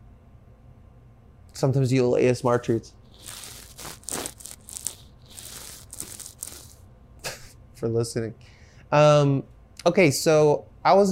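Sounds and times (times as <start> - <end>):
speech: 1.6 - 3.4, 7.8 - 11.0
small microphone rubbing on a beard: 3.0 - 6.8.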